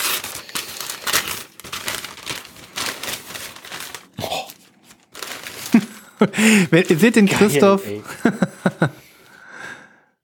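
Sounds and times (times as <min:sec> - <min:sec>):
plastic packaging of a vinyl record crinkling and tearing: 0:00.0 - 0:06.2, 0:06.8 - 0:07.5
laughter: 0:05.7 - 0:09.1
speech: 0:06.2 - 0:08.4.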